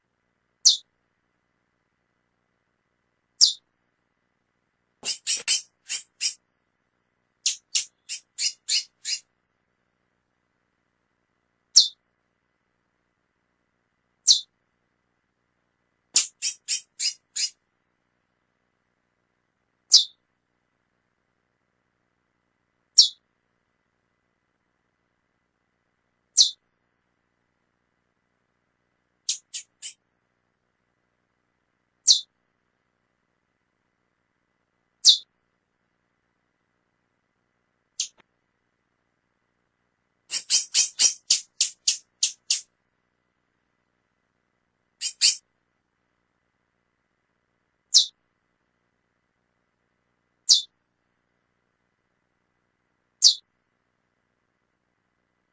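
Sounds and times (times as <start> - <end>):
female curio chirping: 0.6 - 0.9, 3.4 - 3.7, 5.0 - 6.4, 7.4 - 9.2, 11.8 - 12.0, 14.2 - 14.5, 16.2 - 17.6, 19.9 - 20.2, 23.0 - 23.2, 26.4 - 26.6, 29.3 - 30.0, 32.0 - 32.3, 35.0 - 35.3, 38.0 - 38.2, 40.3 - 42.6, 45.0 - 45.4, 47.9 - 48.1, 50.5 - 50.7, 53.2 - 53.4.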